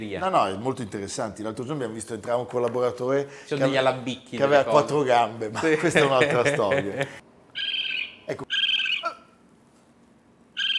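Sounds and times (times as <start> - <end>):
speech: 0.0 - 7.3, 8.3 - 8.6
laughter: 4.6 - 7.2
raccoon giving high wavering trill-like calls: 7.6 - 9.4, 10.6 - 10.7.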